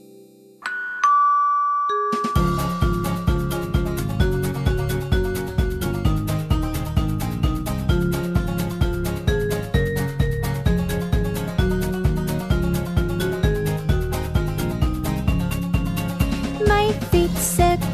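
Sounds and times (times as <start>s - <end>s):
bright two-note ding-dong chime: 0.0s - 3.9s
lively music track with a steady punchy beat: 2.2s - 17.8s.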